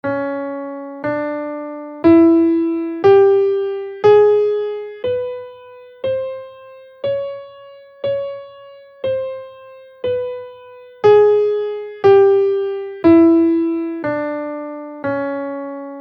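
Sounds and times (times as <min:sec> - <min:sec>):
enigmatic minor scale melody in C minor: 0:00.0 - 0:16.0.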